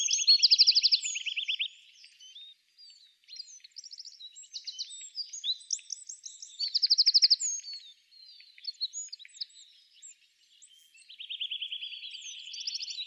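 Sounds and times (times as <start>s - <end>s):
Eurasian wren Troglodytes troglodytes singing: 0.0s - 2.5s, 3.3s - 13.0s.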